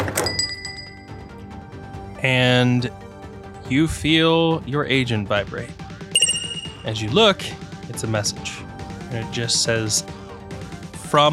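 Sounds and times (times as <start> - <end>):
speech: 2.2 - 3.0, 3.7 - 5.8, 6.8 - 10.2, 11.1 - 11.3
shop door bell jingling as someone walks out: 6.2 - 7.0.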